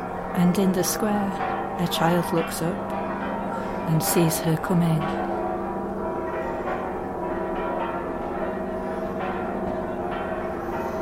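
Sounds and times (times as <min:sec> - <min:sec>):
church bells ringing in a full overlapping peal: 0:00.0 - 0:10.9
speech: 0:00.4 - 0:03.0, 0:03.9 - 0:05.3.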